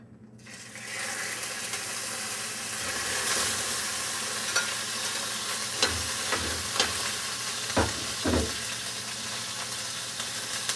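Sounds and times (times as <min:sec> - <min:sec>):
hamburger meat sizzling in vegetable oil in a frying pan: 0:00.4 - 0:10.7
stirring knocks and scrapes in a frying pan: 0:05.8 - 0:07.1, 0:07.8 - 0:08.6.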